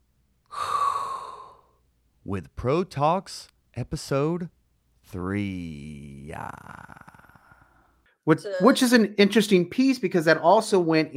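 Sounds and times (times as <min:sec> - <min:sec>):
deep inhaled breath: 0:00.5 - 0:01.8
speech: 0:02.3 - 0:07.1, 0:08.2 - 0:11.1.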